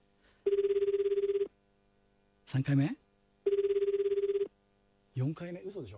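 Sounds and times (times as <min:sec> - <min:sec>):
telephone ringback tone during an outgoing call: 0:00.5 - 0:01.5, 0:03.5 - 0:04.5
speech: 0:02.5 - 0:03.0, 0:05.2 - 0:05.9.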